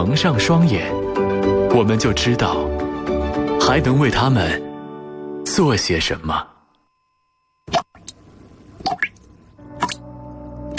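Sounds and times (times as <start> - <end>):
speech: 0.0 - 1.2, 1.8 - 2.7, 3.7 - 4.6, 5.5 - 6.5
water dripping from a leaky faucet: 7.7 - 10.7.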